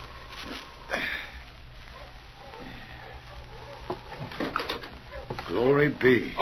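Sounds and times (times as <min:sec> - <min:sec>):
soft patter of dog paws: 0:00.0 - 0:00.8, 0:01.5 - 0:05.8
approaching dogs sniffing: 0:01.9 - 0:05.5
speech: 0:05.6 - 0:06.4.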